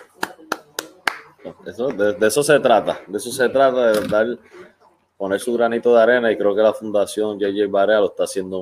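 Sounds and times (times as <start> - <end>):
hand claps: 0.0 - 2.1
speech: 1.4 - 8.5.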